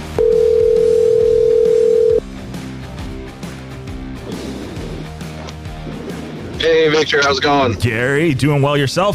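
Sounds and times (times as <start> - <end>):
outgoing phone call electronic ringback tone: 0.2 - 2.2
speech: 6.8 - 9.1.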